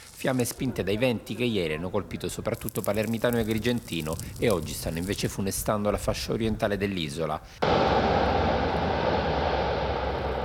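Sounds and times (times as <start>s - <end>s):
speech: 0.2s - 8.0s
firefighting water bomber plane engines roaring: 7.6s - 10.4s.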